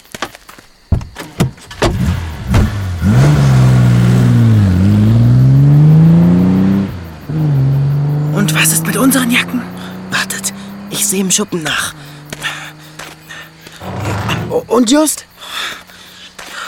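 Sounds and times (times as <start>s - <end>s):
car engine starting and revving as the car drives off: 1.7s - 14.9s
speech: 11.1s - 12.0s, 14.6s - 15.3s.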